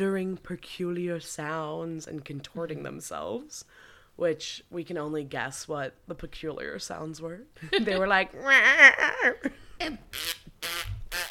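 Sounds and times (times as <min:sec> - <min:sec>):
speech: 0:00.0 - 0:10.4
human voice imitating fart noises: 0:10.0 - 0:11.2.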